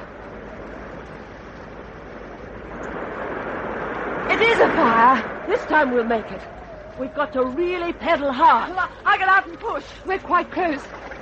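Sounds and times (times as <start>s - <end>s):
surf washing onto a beach: 0.1s - 6.8s
speech: 4.4s - 11.0s.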